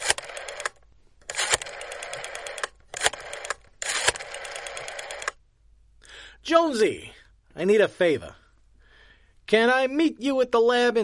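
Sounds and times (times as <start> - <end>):
telephone being dialed with mechanical clicking and whirring: 0.0 - 5.4
speech: 6.5 - 8.4, 9.5 - 11.0.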